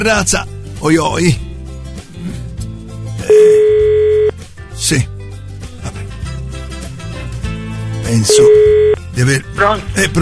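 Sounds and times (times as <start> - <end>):
speech: 0.0 - 1.4, 4.8 - 5.1, 8.1 - 10.2
telephone ringing during an outgoing call: 3.3 - 4.3, 8.3 - 9.0.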